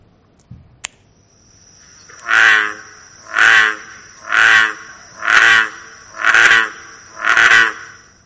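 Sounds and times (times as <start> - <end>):
American bullfrog song played back: 1.8 - 8.2.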